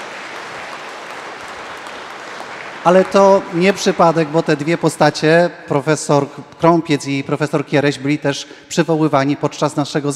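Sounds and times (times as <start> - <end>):
audience applause: 0.0 - 5.3
speech: 2.8 - 10.1.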